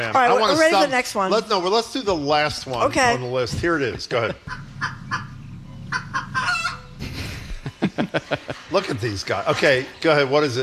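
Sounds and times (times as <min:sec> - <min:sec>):
speech: 0:00.0 - 0:04.9, 0:08.3 - 0:10.6
laughter: 0:03.5 - 0:04.7, 0:07.0 - 0:09.9
chicken clucking: 0:04.4 - 0:07.0.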